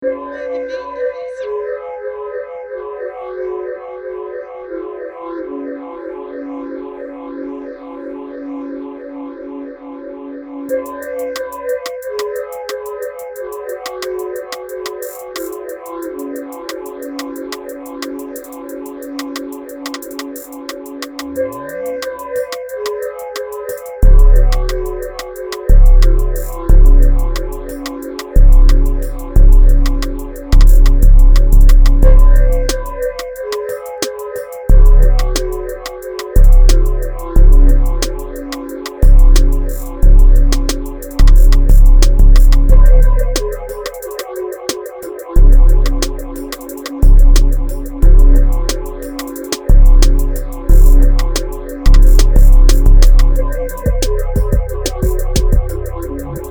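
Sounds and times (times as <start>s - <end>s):
music beat at 90 BPM: 10.7s - 56.4s.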